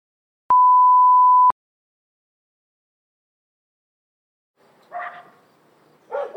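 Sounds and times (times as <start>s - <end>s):
steady electronic beep: 0.5s - 1.5s
faint outdoor noise: 4.6s - 6.3s
dog barking in a dog park: 4.9s - 5.4s, 6.1s - 6.3s.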